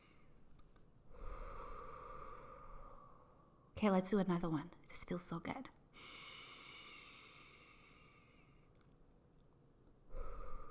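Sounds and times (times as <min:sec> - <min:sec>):
person breathing deeply: 0:01.1 - 0:03.5, 0:05.9 - 0:08.7, 0:10.1 - 0:10.6
speech: 0:03.8 - 0:06.2.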